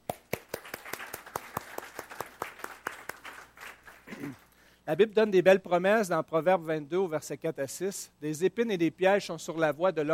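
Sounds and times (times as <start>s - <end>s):
sharp steady hand claps: 0.0s - 4.5s
audience applause: 0.1s - 4.4s
speech: 4.2s - 10.1s.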